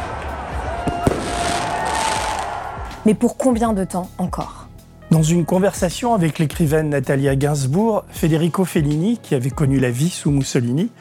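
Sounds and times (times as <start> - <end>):
fireworks exploding during a street celebration: 0.8 - 2.6
speech: 3.1 - 10.9.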